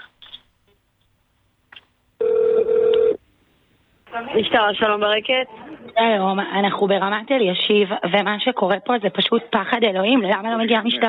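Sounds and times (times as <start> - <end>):
telephone ringing on a call to the police: 2.2 - 3.2
speech: 4.3 - 11.0.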